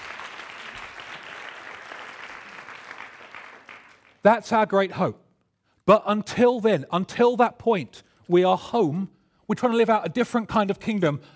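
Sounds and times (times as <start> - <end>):
audience applause with dense clapping from many hands: 0.0 - 4.2
speech: 4.2 - 5.2, 5.9 - 11.3.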